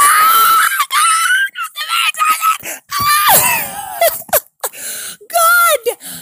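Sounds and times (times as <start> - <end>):
loud high-pitched human scream of excitement: 0.0 - 4.1.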